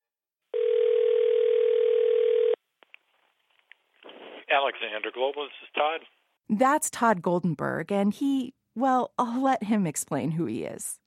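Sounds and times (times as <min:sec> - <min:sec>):
telephone dial tone: 0:00.5 - 0:02.6
speech: 0:04.5 - 0:11.0.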